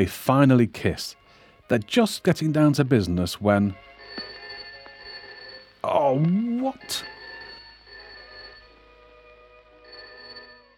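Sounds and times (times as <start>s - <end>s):
speech: 0.0s - 3.9s, 5.9s - 7.1s
telephone bell ringing: 3.4s - 10.7s.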